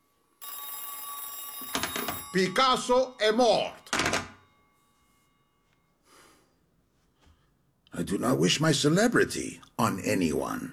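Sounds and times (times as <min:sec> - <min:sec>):
telephone bell ringing with metallic trill: 0:00.4 - 0:06.0
speech: 0:02.3 - 0:03.8, 0:08.0 - 0:10.7.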